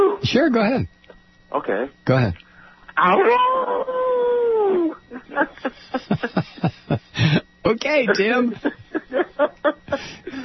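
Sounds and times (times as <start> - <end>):
speech: 0.3 - 4.1, 4.7 - 10.4
person imitating a coyote howl: 3.0 - 5.0
laughter: 4.7 - 7.4, 8.4 - 10.4.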